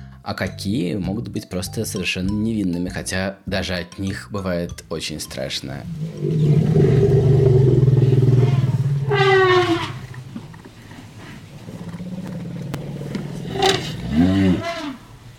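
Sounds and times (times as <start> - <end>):
speech: 0.2 - 7.3
elephant deep loud rumble: 5.8 - 15.2.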